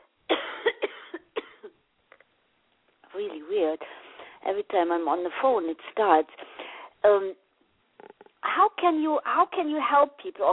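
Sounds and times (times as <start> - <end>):
person with lingering tickling cough coughing: 0.3 - 1.8
speech: 3.2 - 7.4, 8.6 - 10.5.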